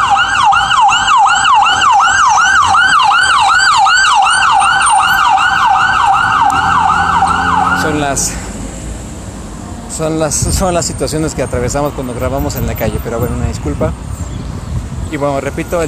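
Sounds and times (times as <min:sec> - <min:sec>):
ambulance siren passing on the street: 0:00.0 - 0:08.2
faint street rumble: 0:00.0 - 0:15.8
speech: 0:08.1 - 0:08.4, 0:10.0 - 0:14.3, 0:15.1 - 0:15.8.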